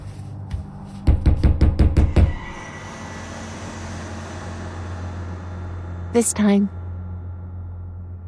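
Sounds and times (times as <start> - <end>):
solid knocks on a wooden door: 1.1 - 2.3
speech: 6.2 - 6.8.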